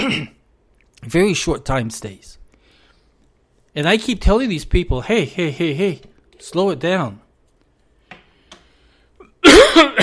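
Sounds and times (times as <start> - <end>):
speech: 0.0 - 0.4, 1.0 - 2.4, 3.7 - 7.2, 9.8 - 10.0
cough: 0.0 - 0.5, 9.3 - 10.0.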